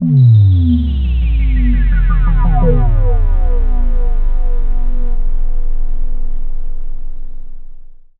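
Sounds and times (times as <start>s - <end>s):
sci-fi bass drop: 0.0s - 8.1s.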